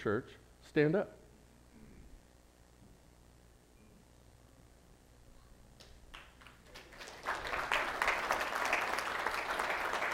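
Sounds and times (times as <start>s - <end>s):
speech: 0.0s - 1.2s
church audience applause: 6.2s - 10.1s.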